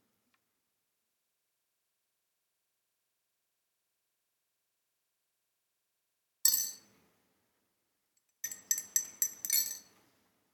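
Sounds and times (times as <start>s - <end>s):
spoon clinking against a glass while stirring tea: 8.4s - 9.9s.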